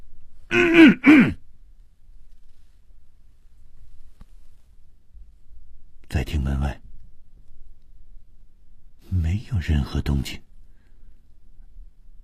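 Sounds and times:
faint hiss: 0.0 - 12.2
man coughing: 0.5 - 1.4
speech: 0.5 - 1.4, 9.6 - 10.5.

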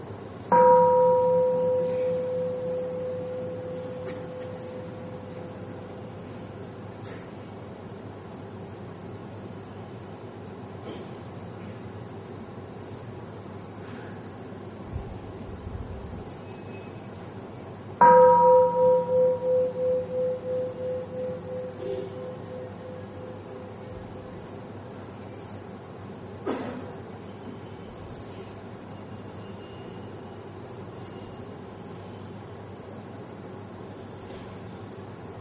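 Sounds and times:
mindfulness bell struck during a Buddhist dharma talk: 0.5 - 5.6, 18.0 - 24.3.

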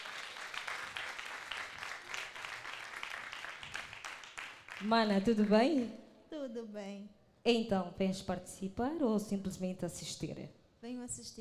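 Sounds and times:
crowd clapping at an event: 0.0 - 5.9
speech: 4.8 - 11.4.

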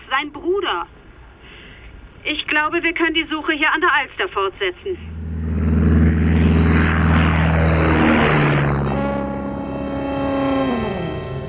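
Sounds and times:
speech: 0.2 - 1.0, 2.2 - 5.1
propeller airplane engine droning while taking off from a bumpy airstrip: 4.7 - 11.4.

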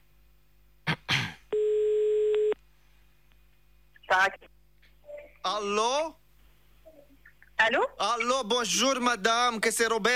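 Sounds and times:
telephone ringing tone on an outgoing call: 1.6 - 2.6
speech: 5.5 - 6.2, 7.6 - 10.1.

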